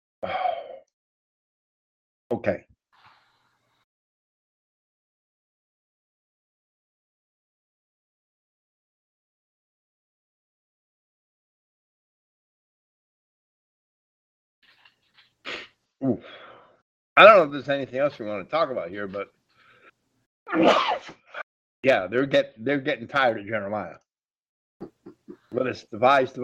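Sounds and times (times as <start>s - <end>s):
speech: 0.2s - 0.5s, 2.3s - 2.7s, 15.4s - 16.4s, 17.2s - 19.4s, 20.5s - 21.2s, 21.8s - 24.0s, 24.8s - 26.4s
person sneezing explosively: 15.5s - 16.4s, 20.5s - 21.4s
quick intake of breath: 15.5s - 16.8s, 19.5s - 20.0s.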